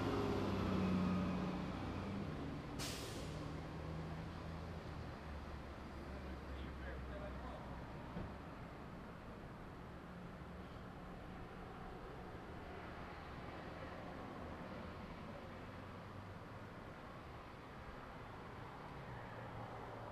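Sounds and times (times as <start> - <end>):
vehicles idling and moving around a gas station: 0.0 - 20.1
sharp hiss at a gas station: 2.8 - 3.4.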